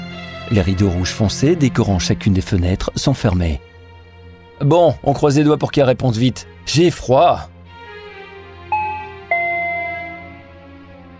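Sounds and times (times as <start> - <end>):
speech: 0.5 - 3.7, 4.6 - 7.5
two-note doorbell ding-dong: 8.8 - 10.4.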